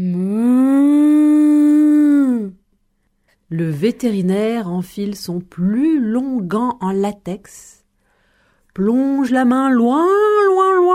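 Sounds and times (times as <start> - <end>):
human voice imitating a cow mooing: 0.0 - 2.6
speech: 3.5 - 7.8, 8.8 - 10.3.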